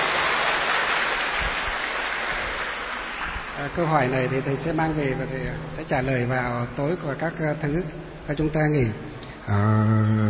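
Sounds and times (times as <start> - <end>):
audience applause of many hands: 0.0 - 5.0
speech: 3.6 - 10.2.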